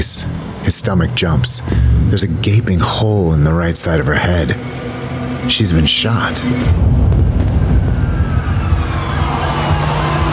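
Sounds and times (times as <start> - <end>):
speech: 0.0 - 7.2
heavy rumbling traffic on a busy street: 0.0 - 10.3
ambulance siren wailing: 7.2 - 10.3.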